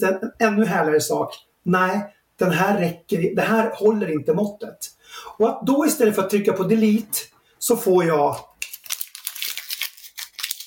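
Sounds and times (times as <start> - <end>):
speech: 0.0 - 8.5
small sheet of paper sticky note being crumpled into a ball: 8.6 - 10.6.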